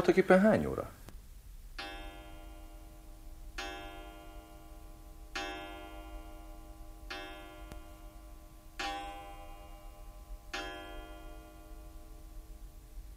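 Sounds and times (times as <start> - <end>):
speech: 0.0 - 1.0
clock striking six o'clock: 1.8 - 12.2.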